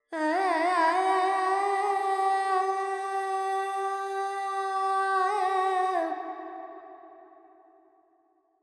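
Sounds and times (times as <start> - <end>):
female Carnatic vocal alap with reverb: 0.1 - 6.3.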